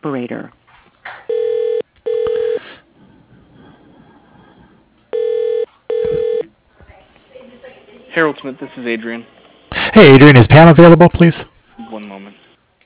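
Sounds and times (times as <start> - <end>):
speech: 0.0 - 0.6, 8.2 - 11.5
telephone keypad tones dialing an extension on an automated phone menu: 5.2 - 6.4.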